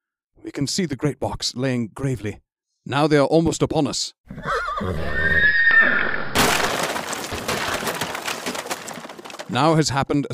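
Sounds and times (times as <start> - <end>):
speech: 0.4 - 6.0, 9.5 - 10.3
horse whinnying shrilly: 4.3 - 6.4
heavy wagon crashing into a rock buried in snow: 6.3 - 9.7
hoof noise of bolting horses: 6.4 - 9.7
scattered clattering debris from an overturned wagon: 6.4 - 9.8.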